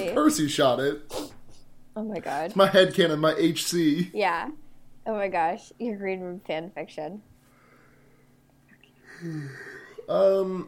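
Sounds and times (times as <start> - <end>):
speech: 0.1 - 1.2, 2.0 - 7.3, 9.2 - 10.6
drawn-out voiced yawn: 9.1 - 10.6.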